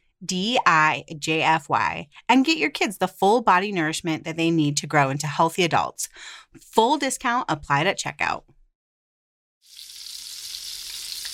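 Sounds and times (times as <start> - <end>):
speech: 0.2 - 8.6
bacon sizzling in a frying pan: 9.6 - 11.3.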